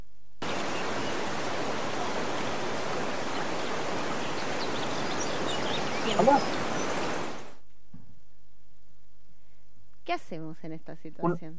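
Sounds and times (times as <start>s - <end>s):
waterfall roaring in a steady rush of water: 0.4s - 7.6s
speech: 6.2s - 6.6s, 10.2s - 11.5s.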